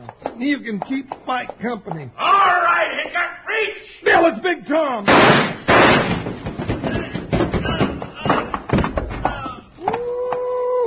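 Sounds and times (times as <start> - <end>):
speech: 0.4 - 6.5
heavy crash: 5.1 - 9.5
thuds and bumps: 5.1 - 10.4.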